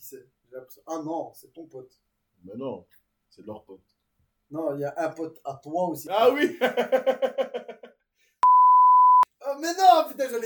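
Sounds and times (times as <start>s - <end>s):
speech: 0.1s - 7.9s, 9.4s - 10.4s
laughter: 6.6s - 7.9s
censor bleep over a spoken name: 8.4s - 9.3s.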